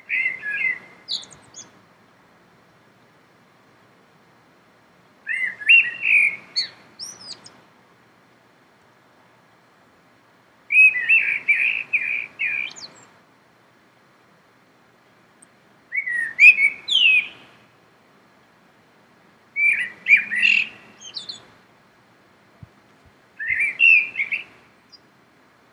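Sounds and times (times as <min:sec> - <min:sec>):
common blackbird singing: 0:00.1 - 0:01.7, 0:05.3 - 0:07.5, 0:10.7 - 0:13.1, 0:15.9 - 0:17.5, 0:19.6 - 0:21.5, 0:23.4 - 0:25.0.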